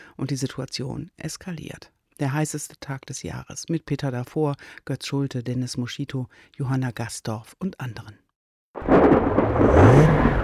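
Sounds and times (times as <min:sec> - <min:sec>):
speech: 0:00.2 - 0:08.2
rising whining tone: 0:08.9 - 0:10.4
car engine revving hard while the vehicle is stuck and sinking into the ground: 0:09.0 - 0:10.4.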